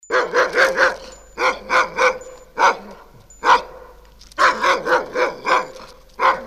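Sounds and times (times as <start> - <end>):
dog barking in rapid bursts of sharp barks: 0.0 - 6.4.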